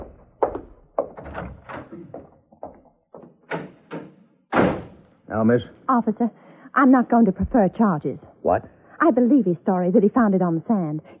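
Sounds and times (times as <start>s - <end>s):
heavy jail cell door clanging shut: 1.1s - 2.2s, 3.2s - 5.0s
speech: 5.3s - 11.1s.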